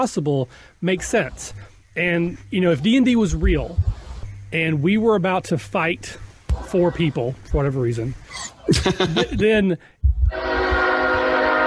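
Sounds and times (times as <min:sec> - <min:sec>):
speech: 0:00.0 - 0:10.5
passing train deep rumbling: 0:00.0 - 0:11.6
laughter: 0:08.4 - 0:09.6
passing train horn blast: 0:10.3 - 0:11.6.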